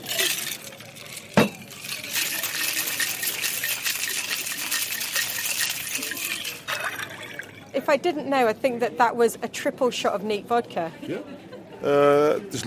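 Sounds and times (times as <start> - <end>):
cocktail shaker metallic clink: 0.0 - 7.7
speech: 7.9 - 12.6.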